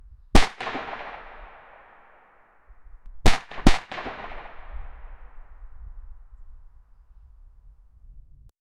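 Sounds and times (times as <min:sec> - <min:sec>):
gunshot echoing through a quiet street: 0:00.4 - 0:05.8.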